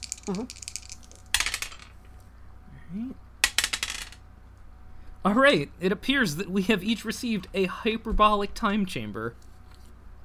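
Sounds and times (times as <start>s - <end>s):
dice clattering across a hard surface: 0.0s - 2.0s, 3.4s - 4.2s
speech: 0.2s - 0.7s, 2.9s - 3.2s, 5.2s - 9.5s.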